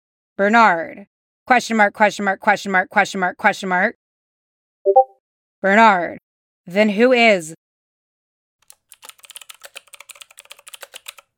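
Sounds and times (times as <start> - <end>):
speech: 0.4 - 4.0, 5.6 - 7.6
rapid typing on a computer keyboard: 8.6 - 11.3.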